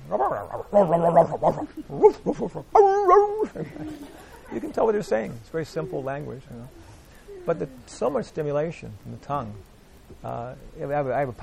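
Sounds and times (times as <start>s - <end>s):
person imitating dog with yelping barks: 0.0s - 3.9s, 5.8s - 7.9s
speech: 0.1s - 11.4s
laughter: 0.7s - 7.8s.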